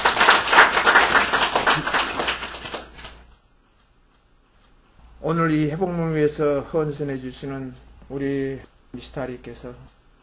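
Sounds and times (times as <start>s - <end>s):
room full of people applauding: 0.0s - 3.2s
speech: 5.3s - 10.0s.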